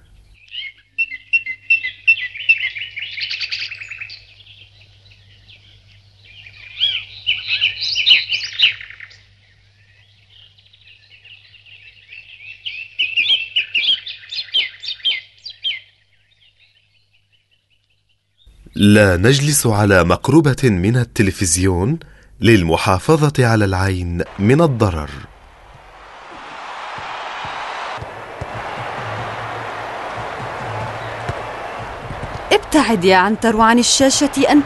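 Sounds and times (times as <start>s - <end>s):
sparrows chirping and twittering in trees: 0.0s - 18.8s, 26.9s - 34.6s
speech: 18.8s - 25.3s, 32.7s - 34.6s.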